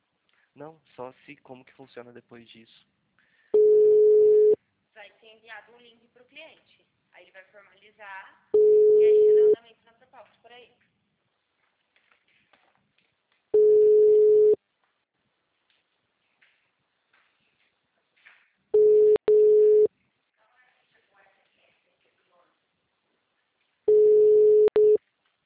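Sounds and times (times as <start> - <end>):
speech: 0.6 - 3.0, 5.2 - 10.9
ringback tone of an unanswered phone call: 3.6 - 4.6, 8.6 - 9.6, 13.6 - 14.6, 18.8 - 19.9, 23.9 - 25.0.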